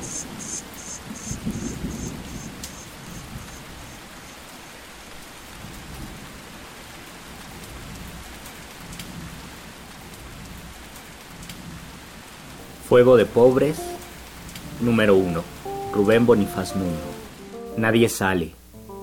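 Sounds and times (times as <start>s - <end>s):
dense downpour of heavy rain hissing: 0.0s - 10.8s, 11.6s - 19.0s
speech: 12.9s - 13.9s, 14.8s - 17.2s, 17.8s - 18.6s.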